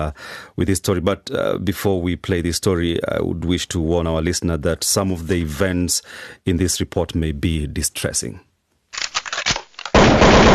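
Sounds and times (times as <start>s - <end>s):
speech: 0.0s - 8.5s
gunshots: 9.9s - 10.5s.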